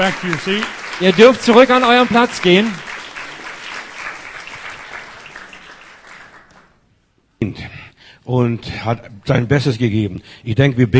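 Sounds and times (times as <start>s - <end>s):
speech: 0.0s - 2.8s, 7.4s - 10.9s
crowd applauding new members at a gathering: 0.0s - 6.8s.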